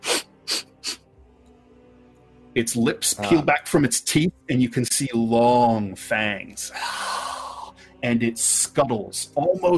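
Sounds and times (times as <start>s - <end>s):
voice imitating a creature sniffing: 0.0s - 1.0s
speech: 2.6s - 7.0s, 8.0s - 9.7s.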